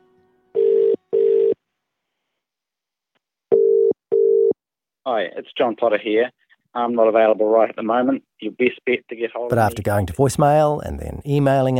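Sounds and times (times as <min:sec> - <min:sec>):
telephone ringback tone: 0:00.6 - 0:01.6, 0:03.5 - 0:04.6
speech: 0:05.0 - 0:11.7.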